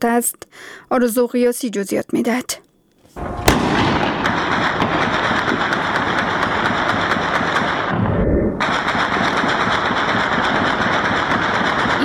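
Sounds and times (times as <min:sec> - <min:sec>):
speech: 0:00.0 - 0:03.4
celebratory gunfire from light and heavy weapons across a city at night: 0:03.2 - 0:12.0.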